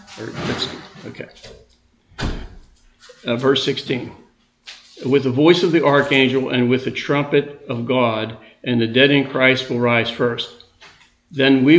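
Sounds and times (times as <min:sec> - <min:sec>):
door pushed closed with a scraping swing and thud: 0:00.0 - 0:01.2, 0:02.1 - 0:02.7
voices murmuring in the room: 0:00.0 - 0:01.4, 0:03.1 - 0:04.2, 0:05.0 - 0:10.6
speech: 0:00.2 - 0:01.7, 0:03.2 - 0:04.2, 0:05.0 - 0:10.6, 0:11.3 - 0:11.7.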